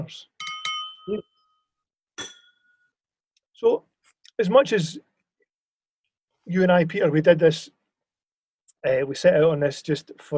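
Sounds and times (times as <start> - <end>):
speech: 0.0 - 0.3, 1.1 - 1.3, 3.6 - 5.1, 6.5 - 7.8, 8.8 - 10.3
whisky glasses clinking in a toast: 0.4 - 1.6, 2.2 - 2.8.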